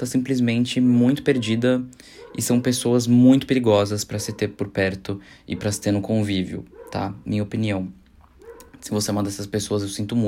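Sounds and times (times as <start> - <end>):
speech: 0.0 - 8.0, 8.8 - 10.2
dog barking in the street: 1.2 - 3.0, 4.0 - 4.8, 5.5 - 6.0, 6.7 - 7.2, 8.4 - 8.9.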